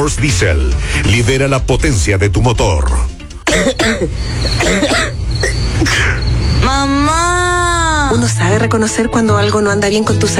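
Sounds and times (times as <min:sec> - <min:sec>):
speech: 0:00.0 - 0:05.2, 0:05.8 - 0:07.3, 0:08.1 - 0:10.3
harsh loud coughs: 0:03.5 - 0:06.2.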